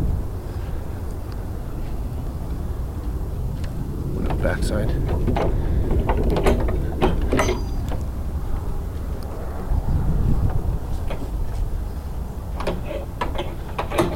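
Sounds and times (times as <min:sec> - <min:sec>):
steady low rumble of wind: 0:00.0 - 0:14.1
back gate opening with metallic clicks, rattles and a squeak: 0:04.2 - 0:08.4, 0:11.0 - 0:14.1
speech: 0:04.4 - 0:06.6.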